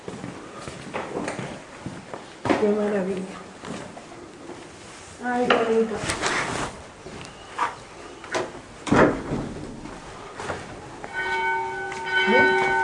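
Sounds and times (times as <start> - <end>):
noisy outdoor background: 0.0 - 12.8
speech: 2.6 - 3.4, 5.2 - 6.4
church bells ringing: 11.0 - 12.8.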